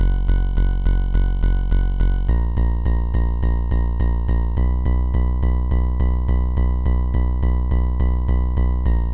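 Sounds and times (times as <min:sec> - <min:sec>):
hip hop bass: 0:00.0 - 0:09.1.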